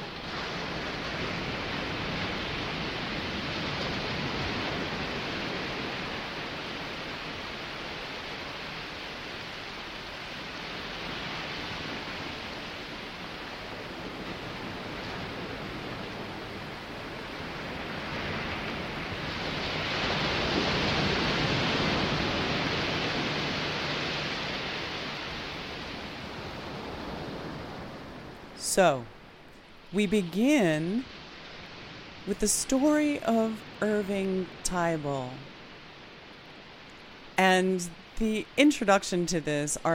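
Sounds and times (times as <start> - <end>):
ocean waves washing on a shore: 0.0 - 39.9
speech: 28.8 - 29.1, 29.9 - 31.1, 32.3 - 35.5, 37.4 - 39.9.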